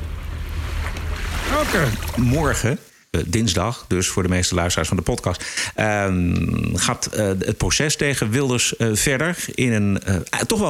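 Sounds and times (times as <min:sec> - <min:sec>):
sea waves rushing: 0:00.0 - 0:02.7
speech: 0:01.6 - 0:10.6.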